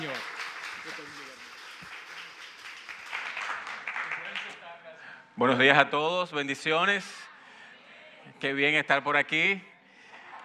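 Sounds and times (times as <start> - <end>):
crowd clapping: 0.0 - 4.6
speech: 5.4 - 7.2, 8.4 - 9.7.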